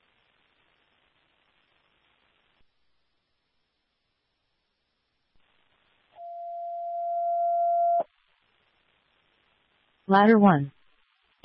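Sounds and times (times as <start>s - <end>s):
faint radio static hissing: 0.0s - 11.4s
dispatch alert tone long steady electronic beep: 6.2s - 8.0s
speech: 10.1s - 10.8s.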